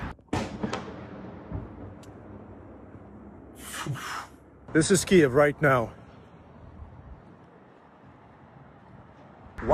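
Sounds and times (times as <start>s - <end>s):
air defense explosion booming over city: 0.3s - 2.9s
speech: 3.8s - 6.0s.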